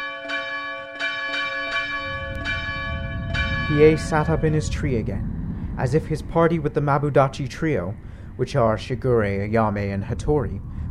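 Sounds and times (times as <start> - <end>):
Christmas bells ringing: 0.0 - 5.0
soft low rumble: 1.8 - 10.8
speech: 3.7 - 10.7.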